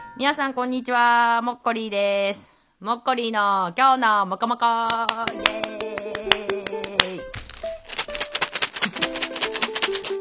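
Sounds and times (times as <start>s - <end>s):
speech: 0.2s - 5.7s
small chocolate candies rattling in a shaken bag: 7.3s - 10.2s.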